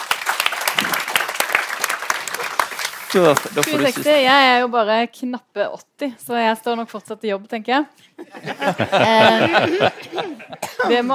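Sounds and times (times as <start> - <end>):
audience applause: 0.0 - 4.2
speech: 3.1 - 11.1
laughter: 8.2 - 11.1.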